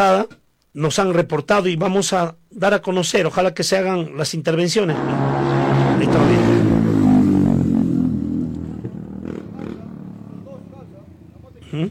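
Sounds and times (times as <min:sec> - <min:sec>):
speech: 0:00.0 - 0:06.9
motorcycle engine revving during street racing: 0:04.9 - 0:10.8.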